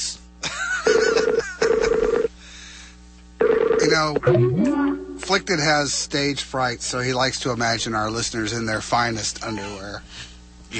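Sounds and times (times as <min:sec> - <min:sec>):
electronic telephone dialing tones: 0:00.9 - 0:02.3, 0:03.4 - 0:05.3
speech: 0:04.0 - 0:10.7.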